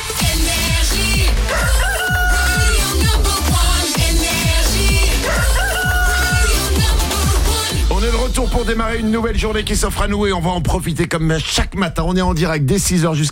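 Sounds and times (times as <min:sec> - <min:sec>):
steady rhythmic music: 0:00.0 - 0:13.2
rooster crowing: 0:01.5 - 0:02.7, 0:05.2 - 0:06.6
speech: 0:08.4 - 0:13.2.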